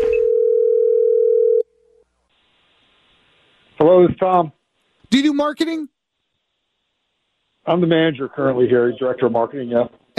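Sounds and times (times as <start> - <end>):
telephone dial tone: 0.2 - 1.6
speech: 3.8 - 5.9, 7.6 - 10.1.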